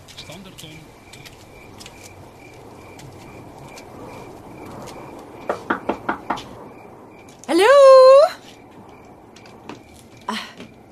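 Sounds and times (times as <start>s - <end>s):
speech: 0.3s - 1.3s
sharp knocks on a door: 5.4s - 6.5s.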